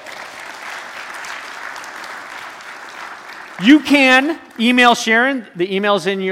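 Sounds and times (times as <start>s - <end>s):
sizable audience applauding at a church gathering: 0.0s - 4.8s
speech: 3.6s - 6.2s.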